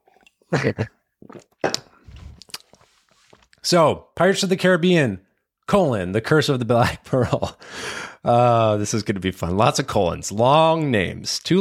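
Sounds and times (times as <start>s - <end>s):
soft swallowing: 0.0s - 3.5s
person sipping and slurping a drink: 0.0s - 3.6s
speech: 0.5s - 1.8s, 3.7s - 11.6s
small lip clicks: 1.7s - 2.8s.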